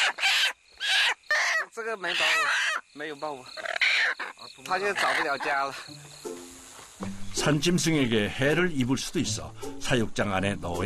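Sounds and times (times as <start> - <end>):
chickens clucking and squawking as they are handled: 0.0 - 2.9, 3.5 - 5.9
insects chirring: 0.0 - 10.8
speech: 1.8 - 6.3, 7.0 - 10.8.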